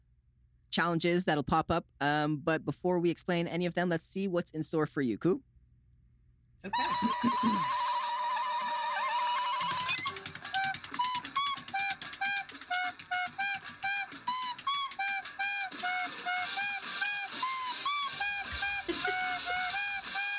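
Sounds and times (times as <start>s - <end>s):
speech: 0.8s - 5.5s, 6.6s - 7.8s
laughter: 6.7s - 8.6s, 18.4s - 19.8s
prize wheel for a challenge game spinning and clicking: 9.5s - 20.2s.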